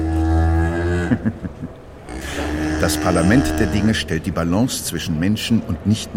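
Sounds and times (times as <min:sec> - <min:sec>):
cow mooing: 0:00.0 - 0:01.2, 0:02.1 - 0:04.2
speech: 0:01.1 - 0:01.4, 0:02.9 - 0:06.1.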